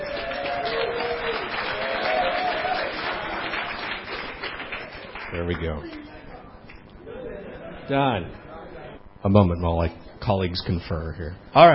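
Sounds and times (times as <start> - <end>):
faint cheers: 0.0 - 3.4
crowd clapping: 0.0 - 6.8
speech: 5.4 - 6.0, 7.9 - 8.5, 9.2 - 11.7.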